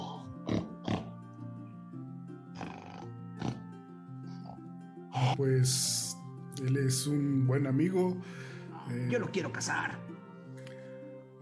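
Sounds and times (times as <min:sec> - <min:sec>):
white boar grunting and snorting: 0:00.0 - 0:01.3, 0:02.4 - 0:05.3
speech: 0:05.3 - 0:10.1.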